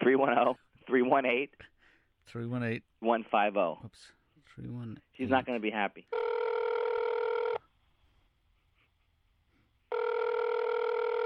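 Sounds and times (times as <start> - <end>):
speech: 0.2 - 1.7, 2.3 - 6.5
telephone ringback tone heard through the line: 6.1 - 7.6, 9.9 - 11.2.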